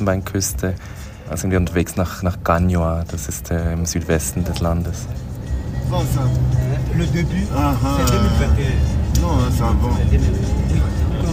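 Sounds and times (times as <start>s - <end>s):
speech: 0.0s - 5.2s, 5.9s - 10.7s
road rumble inside a moving car driving from Abidjan to Ganioa in Ivory Coast: 0.0s - 11.3s.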